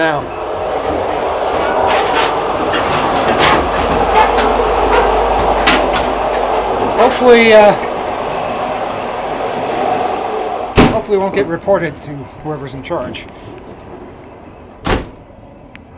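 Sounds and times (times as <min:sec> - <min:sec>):
speech: 0:00.0 - 0:00.4, 0:07.1 - 0:07.9, 0:11.1 - 0:13.6
rising squeal: 0:00.0 - 0:11.5
train wheels clattering over rail joints: 0:00.0 - 0:12.0
steady rumble inside a moving train: 0:00.0 - 0:15.9.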